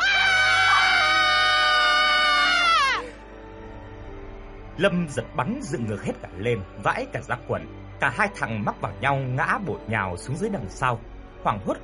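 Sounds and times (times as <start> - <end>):
two people screaming in terror in the dark: 0.0 - 3.2
speech: 4.8 - 11.8.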